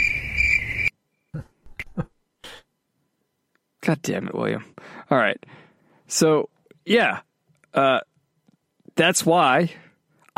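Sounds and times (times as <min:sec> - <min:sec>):
shrill cricket chirp: 0:00.0 - 0:01.3
speech: 0:03.9 - 0:08.1, 0:09.0 - 0:09.8.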